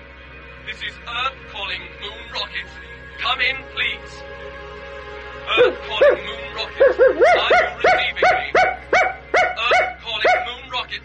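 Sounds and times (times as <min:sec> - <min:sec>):
speech: 0:00.7 - 0:04.9, 0:05.5 - 0:08.5
dog barking: 0:05.6 - 0:10.6.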